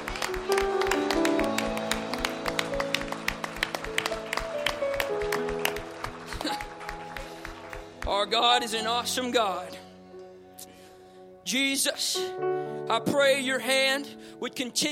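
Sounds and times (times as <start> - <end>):
audience clapping hands in praise: 0.0 - 9.2
speech: 8.3 - 9.8, 11.5 - 14.9.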